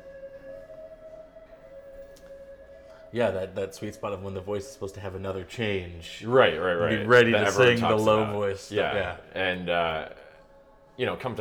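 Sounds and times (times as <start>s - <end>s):
siren outside: 0.0s - 5.4s
speech: 3.1s - 10.2s, 11.0s - 11.3s.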